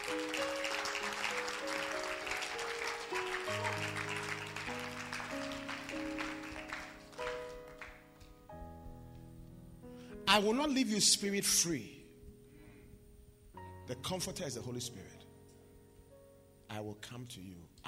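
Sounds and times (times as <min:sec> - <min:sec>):
crowd clapping: 0:00.0 - 0:08.5
sustained organ or keyboard chords: 0:00.0 - 0:16.7
speech: 0:10.3 - 0:12.0, 0:13.9 - 0:15.2, 0:16.8 - 0:17.8.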